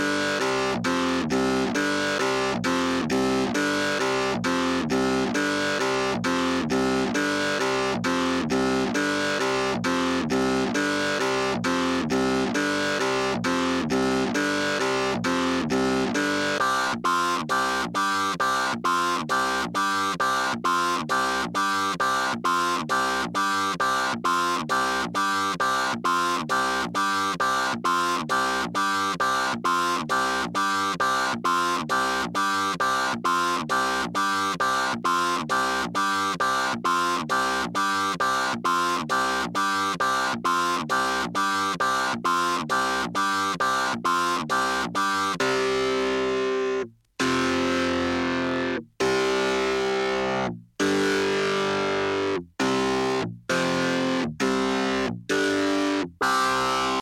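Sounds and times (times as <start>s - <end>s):
clavinet: 0.0s - 57.0s.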